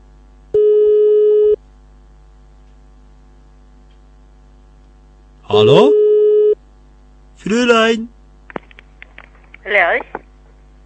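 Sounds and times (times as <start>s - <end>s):
faint low hum: 0.0s - 10.8s
telephone line tone while calling for TV repair: 0.5s - 1.6s, 5.6s - 6.6s
speech: 5.5s - 6.0s, 7.4s - 8.2s, 9.7s - 10.2s.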